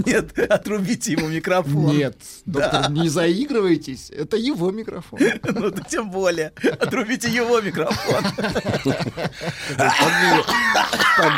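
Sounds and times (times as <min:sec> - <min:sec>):
speech: 0:00.0 - 0:11.3
man coughing harshly: 0:00.4 - 0:01.7, 0:09.4 - 0:11.3
laugh-like voiced noises and rough vocal bursts: 0:02.5 - 0:03.3, 0:05.1 - 0:11.3.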